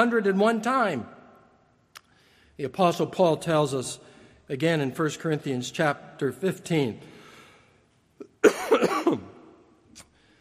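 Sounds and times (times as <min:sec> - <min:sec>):
speech: 0:00.0 - 0:01.2, 0:02.6 - 0:07.1, 0:08.4 - 0:09.3
preacher coughing in the pulpit during a sermon: 0:08.2 - 0:09.4.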